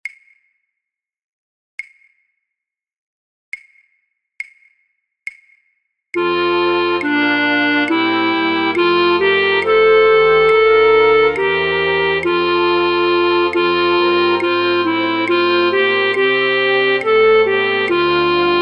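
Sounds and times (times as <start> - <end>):
flute orchestra playing third flute parts for practice tracks: 6.2 - 18.6.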